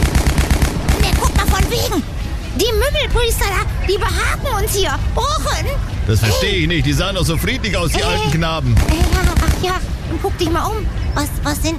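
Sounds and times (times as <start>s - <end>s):
several MG 42 machine guns firing at targets: 0.0s - 1.8s, 8.7s - 9.8s
speech: 3.0s - 11.7s.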